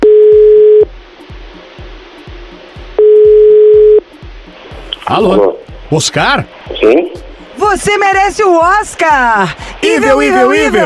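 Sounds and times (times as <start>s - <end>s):
telephone ringback tone while someone is being called: 0.0s - 0.9s, 3.0s - 4.0s
speech: 5.1s - 10.8s.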